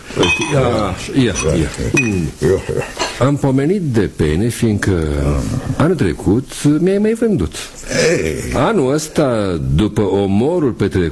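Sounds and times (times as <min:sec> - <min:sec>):
glasses clinking as drinks are poured: 0:00.0 - 0:03.2
speech: 0:00.2 - 0:11.0.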